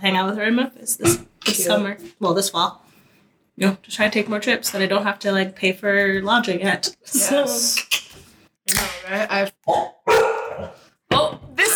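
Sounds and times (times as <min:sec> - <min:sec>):
speech: 0:00.0 - 0:02.9, 0:03.6 - 0:08.1, 0:08.7 - 0:11.7
dog barking excitedly: 0:09.7 - 0:10.8.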